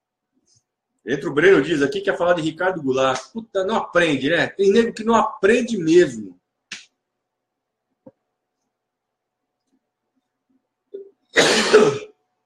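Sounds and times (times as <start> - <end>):
speech: 1.0 - 6.4
loud cough: 11.3 - 12.2.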